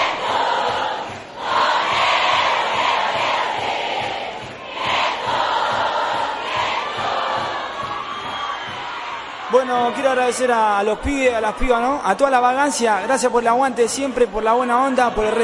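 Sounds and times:
live crowd at cumbia concert applauding and cheering: 0.0s - 15.4s
speech: 9.7s - 15.4s.

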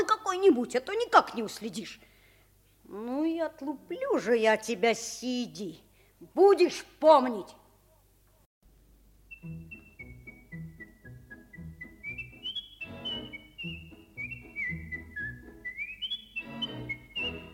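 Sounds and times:
speech: 0.3s - 2.1s, 2.9s - 7.6s, 9.4s - 9.7s
boy whistling a lively clear high tune: 9.3s - 17.5s.

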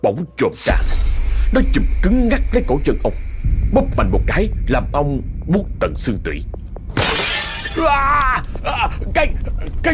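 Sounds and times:
speech: 0.0s - 6.6s, 7.8s - 9.9s
oil lamp falling to the floor and shattering: 7.0s - 8.0s
person crying out: 7.7s - 8.9s.

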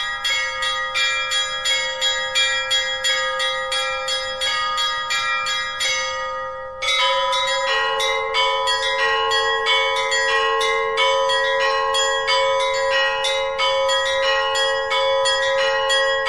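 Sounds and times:
Russian Orthodox church bells chiming for Easter: 0.0s - 16.2s.

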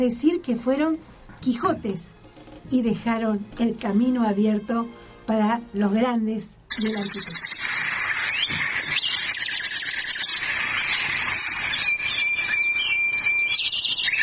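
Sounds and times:
speech: 0.0s - 7.5s
nightingale song played back on radio: 6.7s - 14.2s.

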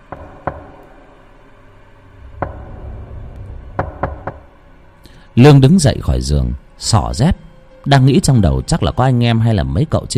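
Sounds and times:
faint low hum: 0.0s - 10.1s
knocking on a door at night: 0.1s - 0.8s, 2.4s - 3.0s, 3.7s - 4.5s
speech: 5.4s - 10.1s.

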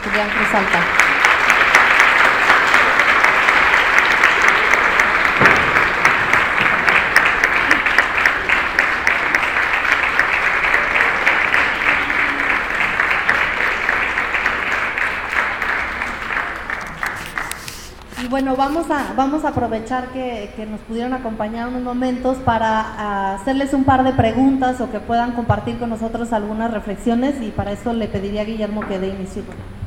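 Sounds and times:
audience applause at a book presentation event: 0.0s - 18.3s
speech: 0.2s - 1.0s, 18.3s - 29.8s.

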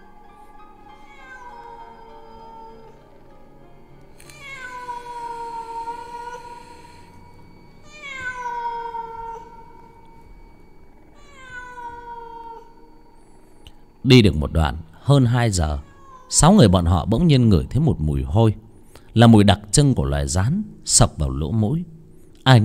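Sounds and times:
wild cat yowling: 0.9s - 3.2s, 4.3s - 7.2s, 7.8s - 10.0s, 11.1s - 12.8s, 15.7s - 16.4s
speech: 14.0s - 18.6s, 19.2s - 22.6s.

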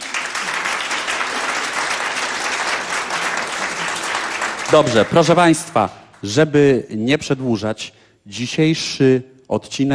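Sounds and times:
audience applause: 0.0s - 5.8s
speech: 4.7s - 9.9s.

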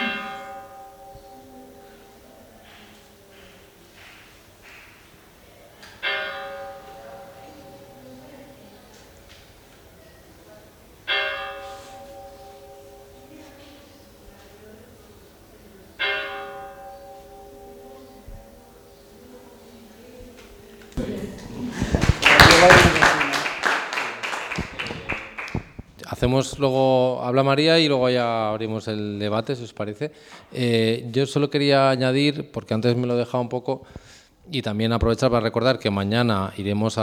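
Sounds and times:
village church bell tolling slow separate strokes in the afternoon: 0.0s - 4.8s, 6.0s - 9.3s, 10.9s - 19.7s
burst of broadband noise: 21.0s - 23.5s
laughter: 21.0s - 25.7s
speech: 26.4s - 37.0s.

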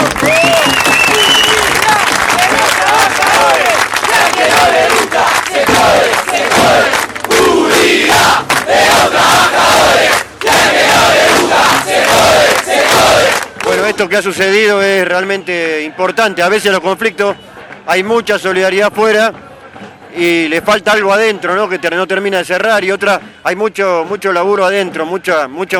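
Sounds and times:
crowd clapping at a gathering: 0.0s - 14.0s
speech: 14.0s - 19.5s, 20.1s - 25.7s.

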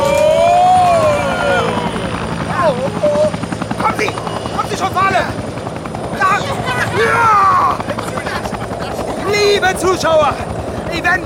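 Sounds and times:
helicopter rotor and engine drone swaying in a gust of wind during a rescue: 0.0s - 11.2s
speech: 9.6s - 11.2s.

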